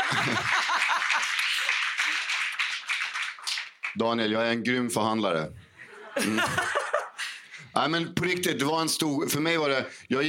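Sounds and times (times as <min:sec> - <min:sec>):
laughter: 0:00.0 - 0:01.7, 0:05.8 - 0:07.4
hand-clapping applause: 0:00.0 - 0:04.0
speech: 0:00.2 - 0:00.6, 0:04.0 - 0:05.6, 0:06.2 - 0:06.8, 0:07.8 - 0:10.2.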